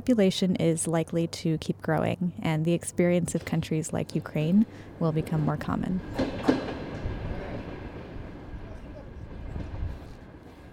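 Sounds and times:
speech: 0.0 - 6.5
train arriving rolling along the rails: 3.0 - 10.7.

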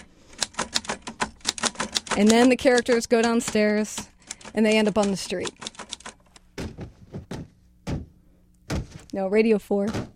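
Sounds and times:
typewriter key strikes made by a sound effects man: 0.0 - 6.3
speech: 2.2 - 5.6, 9.2 - 10.1.

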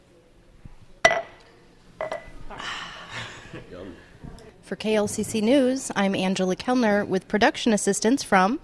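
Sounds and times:
beer glasses clinking in a toast at a beer tasting: 2.0 - 2.3
speech: 4.7 - 8.6.

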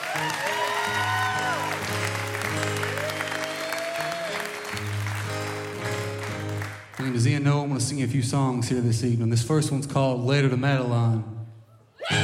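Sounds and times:
instrumental music: 0.0 - 7.2
audience clapping: 0.0 - 7.4
speech: 7.2 - 11.3.

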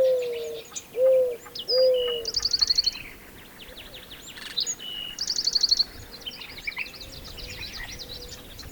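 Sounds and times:
Mourning Dove cooing: 0.0 - 2.3
busy songbird trills and chirps: 0.0 - 8.6.

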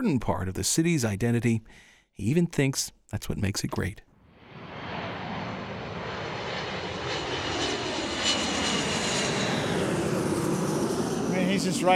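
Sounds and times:
speech: 0.0 - 4.1, 11.5 - 11.9
airplanes taking off from a large international airport: 4.3 - 11.9.

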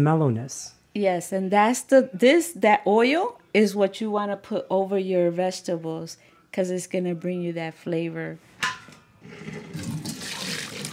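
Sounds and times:
speech: 0.0 - 9.6
water pouring while draining boiled root vegetables: 9.2 - 10.9.

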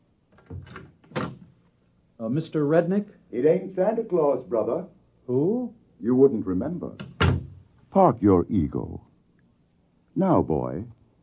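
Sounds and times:
office door creaking and clunking open: 0.3 - 1.5, 7.0 - 7.6
speech: 2.3 - 7.1, 7.9 - 9.1, 10.2 - 11.0.

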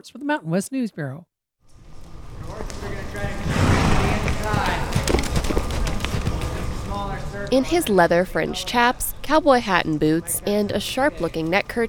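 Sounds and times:
speech: 0.0 - 1.3, 7.3 - 11.8
horse hooves clip-clopping on a dirt wilderness trail during saddle training: 2.0 - 7.5
rustling outdoor background: 4.2 - 8.0.

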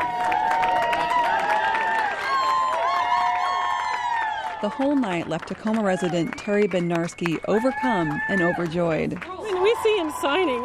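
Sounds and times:
crowd cheering and whooping for couples leaving building: 0.0 - 10.6
people clapping: 0.0 - 10.6
speech: 4.6 - 10.6.

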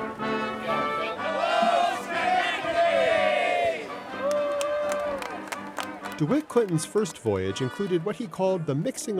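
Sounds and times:
large crowd at a dock shouting and cheering: 1.2 - 6.1
speech: 6.2 - 9.1.

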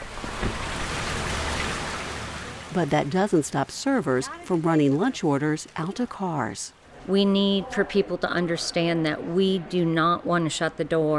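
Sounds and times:
steady rain falling on an outdoor restaurant patio: 0.0 - 6.2
speech: 2.8 - 11.1.

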